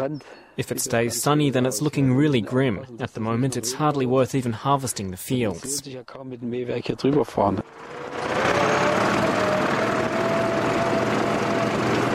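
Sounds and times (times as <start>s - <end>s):
speech: 0.0s - 8.5s
tractor engine ploughing a cornfield: 7.6s - 12.1s.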